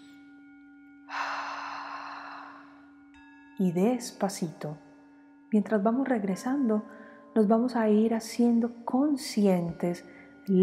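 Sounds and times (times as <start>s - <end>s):
deep breath taken during a guided meditation: 1.1s - 3.0s, 6.9s - 7.3s
speech: 3.6s - 4.8s, 5.5s - 10.6s.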